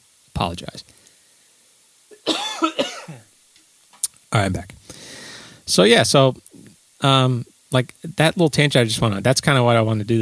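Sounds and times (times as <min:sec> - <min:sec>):
speech: 0:00.4 - 0:01.0, 0:04.3 - 0:04.8, 0:05.7 - 0:06.4, 0:07.0 - 0:10.2
person coughing away from the microphone: 0:02.1 - 0:03.3.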